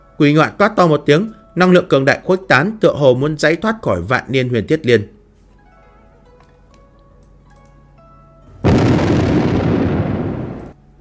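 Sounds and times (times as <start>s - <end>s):
speech: 0.2s - 5.2s
explosions bursting from the ground: 8.6s - 10.8s.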